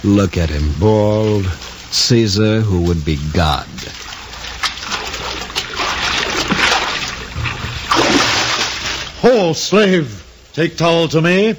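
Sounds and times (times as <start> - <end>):
speech: 0.0 - 4.1, 9.2 - 11.5
water splashing as a person swims: 3.2 - 9.2.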